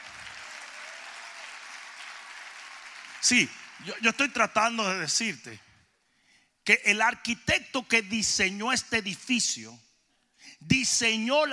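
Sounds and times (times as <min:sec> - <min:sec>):
large crowd applauding: 0:00.0 - 0:04.6
speech: 0:03.2 - 0:05.7, 0:06.7 - 0:09.8, 0:10.5 - 0:11.5.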